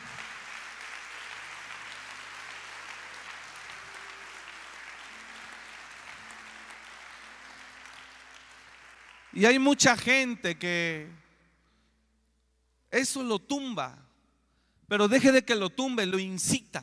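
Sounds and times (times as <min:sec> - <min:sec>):
congregation applauding: 0:00.0 - 0:10.0
speech: 0:09.4 - 0:11.2, 0:12.9 - 0:14.0, 0:14.9 - 0:16.8.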